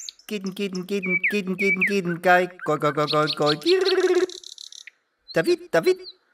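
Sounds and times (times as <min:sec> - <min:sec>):
speech: 0:00.3 - 0:04.2, 0:05.3 - 0:06.2
song thrush singing: 0:00.3 - 0:04.4.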